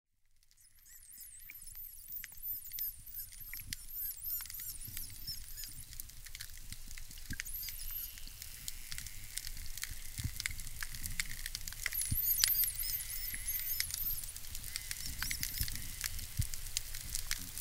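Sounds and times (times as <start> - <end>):
underwater background noise: 0.3 - 17.5
dolphin whistles: 0.6 - 5.9, 7.4 - 8.3, 11.9 - 15.9
dolphin clicks and crackling: 0.6 - 17.4.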